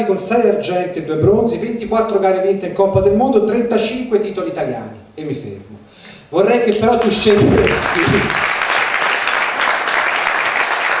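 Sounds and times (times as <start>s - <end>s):
speech: 0.0s - 5.7s, 6.3s - 8.4s
theatre audience applauding: 6.9s - 10.9s.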